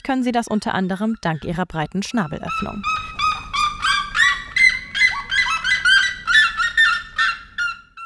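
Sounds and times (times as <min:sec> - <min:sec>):
speech: 0:00.1 - 0:03.0
red-legged seriemas calling to a partner in the Brazilian savanna: 0:02.1 - 0:08.0.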